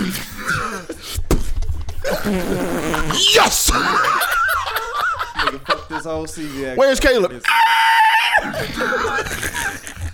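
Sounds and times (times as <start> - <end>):
laughter: 2.1 - 6.4, 8.4 - 10.1
speech: 2.2 - 4.4, 5.5 - 10.0
person screaming and yelling: 7.4 - 8.5.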